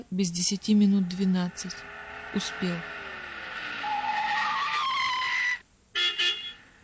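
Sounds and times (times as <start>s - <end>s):
speech: 0.0s - 3.0s
car braking tires squealing at night: 0.7s - 5.6s
car horn honks: 5.3s - 6.7s.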